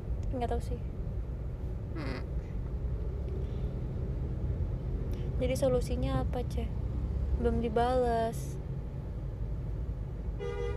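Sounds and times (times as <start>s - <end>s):
traffic rumble: 0.0s - 10.7s
speech: 0.3s - 1.0s, 2.0s - 2.3s, 5.4s - 6.8s, 7.4s - 8.6s
car horn honking in traffic: 10.4s - 10.7s.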